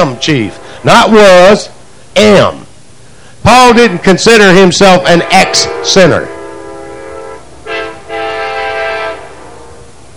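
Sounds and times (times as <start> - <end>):
passing train horn blasts: 0.0 - 1.6, 3.8 - 10.0
passing train rumble: 0.0 - 10.1
speech: 0.1 - 2.6, 3.4 - 6.4.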